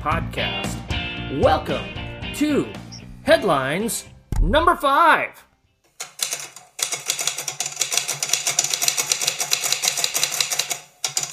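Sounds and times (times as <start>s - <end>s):
speech: 0.0s - 5.4s
typewriter clacking: 6.0s - 11.3s.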